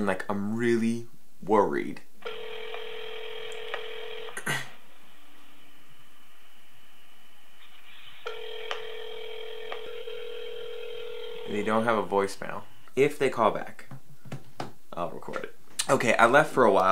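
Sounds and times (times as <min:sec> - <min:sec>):
speech: 0:00.0 - 0:02.1, 0:11.5 - 0:13.9, 0:15.0 - 0:16.9
faint telephone dialing tones while calling back a scam caller: 0:02.2 - 0:04.8, 0:07.7 - 0:11.7.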